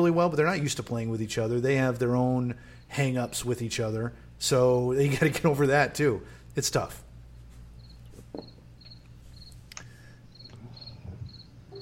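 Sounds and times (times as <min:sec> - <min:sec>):
speech: 0:00.0 - 0:07.0
soft low hum: 0:00.2 - 0:11.8
crickets chirping at dusk: 0:02.5 - 0:04.0, 0:07.7 - 0:11.8.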